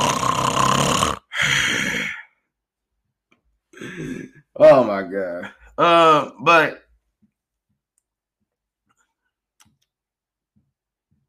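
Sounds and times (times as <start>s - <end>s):
voice imitating snoring with raspy breaths: 0.0s - 2.3s
speech: 4.6s - 6.8s.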